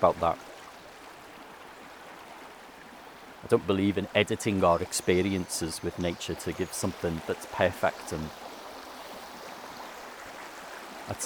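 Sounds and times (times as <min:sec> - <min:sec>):
speech: 0:00.0 - 0:00.5, 0:03.4 - 0:08.4, 0:11.1 - 0:11.2
river flowing: 0:00.0 - 0:11.2.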